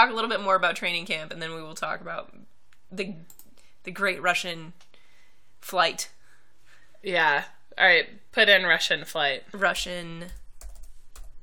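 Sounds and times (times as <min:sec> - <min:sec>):
speech: 0:00.0 - 0:04.9, 0:05.6 - 0:06.2, 0:07.0 - 0:10.4
one-handed typing on a laptop keyboard: 0:10.2 - 0:11.4.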